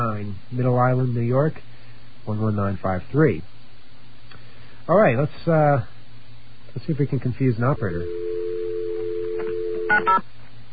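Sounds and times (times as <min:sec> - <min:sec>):
speech: 0:00.2 - 0:01.7, 0:02.3 - 0:03.5, 0:04.9 - 0:05.9, 0:06.8 - 0:08.4, 0:09.9 - 0:10.4
steady telephone dial tone: 0:07.8 - 0:10.2.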